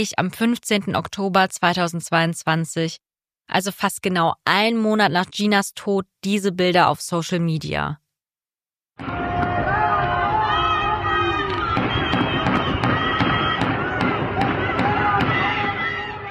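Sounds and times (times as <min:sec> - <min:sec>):
speech: 0:00.0 - 0:08.0, 0:09.0 - 0:09.2
crowd roaring and shouting outside prison: 0:09.0 - 0:16.3
gunshots outside prison: 0:11.3 - 0:16.3.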